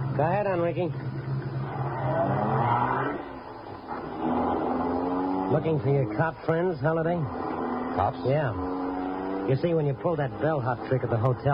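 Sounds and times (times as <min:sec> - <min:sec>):
car engine starting and driving off: 0:00.0 - 0:11.5
speech: 0:00.2 - 0:01.3, 0:02.1 - 0:02.8, 0:05.5 - 0:08.7, 0:09.5 - 0:11.5.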